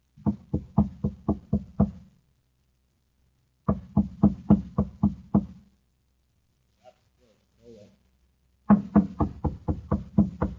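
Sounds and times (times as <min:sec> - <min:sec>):
rapid sharp knocking on a door: 0:00.2 - 0:02.0, 0:03.7 - 0:05.6, 0:08.7 - 0:10.5.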